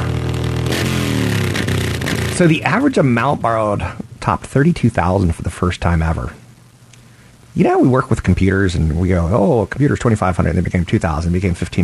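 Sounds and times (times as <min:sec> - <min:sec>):
car engine revving: 0:00.0 - 0:03.1
speech: 0:02.4 - 0:06.4, 0:07.6 - 0:11.8.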